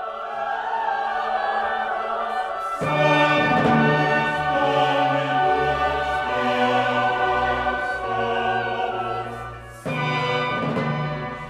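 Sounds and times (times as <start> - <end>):
large six-part choir singing a baroque mass: 0.0 - 11.4.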